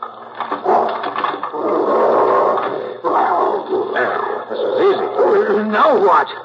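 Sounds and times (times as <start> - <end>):
dog growling and snarling at a house: 0.6 - 5.7
speech: 4.2 - 6.4.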